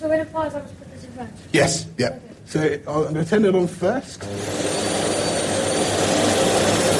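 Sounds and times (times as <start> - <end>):
speech: 0.0 - 4.7
vacuum cleaner running: 4.2 - 6.9.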